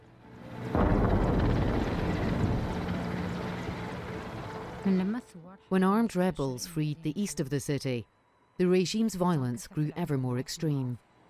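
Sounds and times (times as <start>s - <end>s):
helicopter rotor and engine flying over a war-torn Syrian city: 0.7s - 5.1s
speech: 4.8s - 11.1s.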